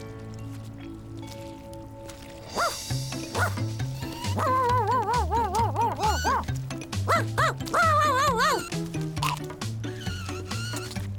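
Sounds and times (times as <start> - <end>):
puppy playing with a mop barking and yipping: 2.5 - 11.0.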